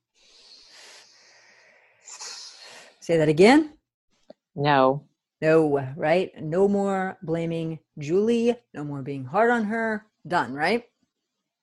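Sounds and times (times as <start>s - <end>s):
long deep breath: 0.0s - 3.0s
speech: 3.1s - 3.8s, 4.6s - 10.9s.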